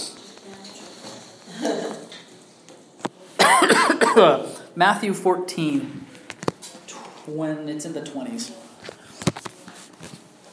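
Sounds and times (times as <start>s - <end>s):
person coughing: 3.4s - 4.4s
speech: 4.2s - 6.0s, 7.3s - 8.6s.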